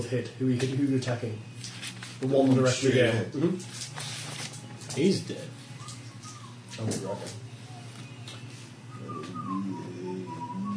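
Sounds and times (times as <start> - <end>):
speech: 0.0 - 4.1, 5.0 - 5.6, 6.8 - 7.4
person whistling a short melodic phrase: 8.9 - 10.7.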